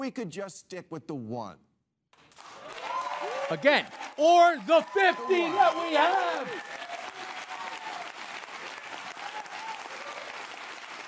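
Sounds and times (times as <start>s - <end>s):
speech: 0.0s - 1.7s, 3.5s - 6.8s
crowd applauding with many hands clapping: 2.2s - 11.0s.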